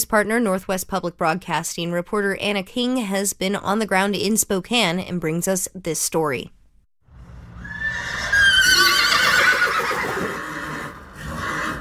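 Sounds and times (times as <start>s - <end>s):
speech: 0.1s - 6.6s
agitated horse whinnying: 7.6s - 11.8s.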